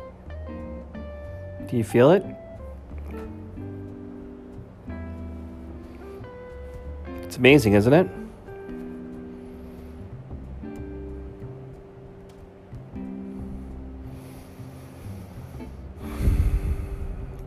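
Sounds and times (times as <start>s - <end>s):
soft steady humming drone: 0.0s - 17.4s
speech: 1.7s - 2.4s, 7.4s - 8.2s
slow deep inhaling breath through the nose: 9.2s - 10.4s, 13.1s - 17.4s.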